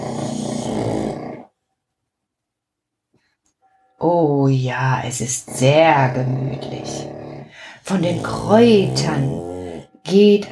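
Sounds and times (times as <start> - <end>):
pug snoring in a corner: 0.0 - 1.5, 5.3 - 10.2
speech: 4.0 - 7.2, 7.8 - 10.4.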